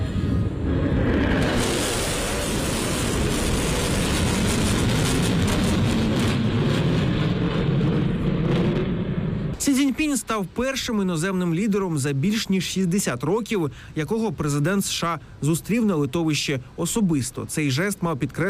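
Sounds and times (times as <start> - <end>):
US B-1 Lancer strategic bombers roaring overhead: 0.0 - 9.6
speech: 10.0 - 18.4.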